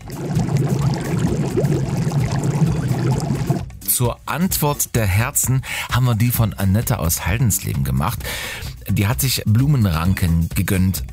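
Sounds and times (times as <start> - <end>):
heated pool water bubbling and gurgling: 0.0 - 3.7
speech: 4.0 - 11.1.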